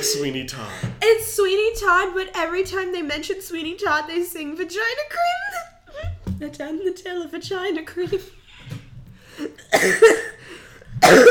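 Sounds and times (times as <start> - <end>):
speech: 0.0 - 8.4, 9.4 - 10.4, 11.0 - 11.3
loud coughing fit with harsh rapid coughs: 9.5 - 11.3.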